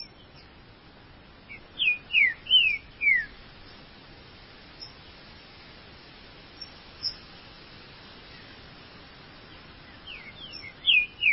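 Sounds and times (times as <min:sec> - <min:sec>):
faint bird chirps: 0:00.0 - 0:00.6, 0:01.4 - 0:03.8, 0:04.8 - 0:05.1, 0:06.5 - 0:07.3, 0:09.4 - 0:11.3
Green-winged saltator song: 0:01.5 - 0:03.4, 0:09.8 - 0:11.3.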